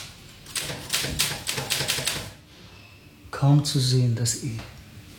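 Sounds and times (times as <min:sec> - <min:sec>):
mechanical typewriter keys clacking: 0:00.5 - 0:02.3
speech: 0:03.4 - 0:04.8.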